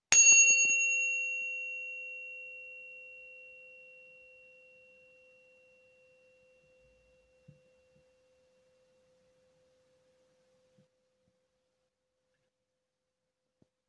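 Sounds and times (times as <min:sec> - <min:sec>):
zen meditation chime: 0:00.2 - 0:10.1.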